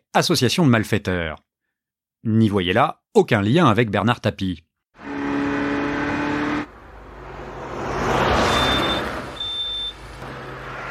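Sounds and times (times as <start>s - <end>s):
speech: 0.2s - 1.5s, 2.2s - 5.1s
red Ferrari Testarossa engine roaring on a motorway: 5.0s - 10.9s
short high electronic beeps: 8.4s - 10.0s.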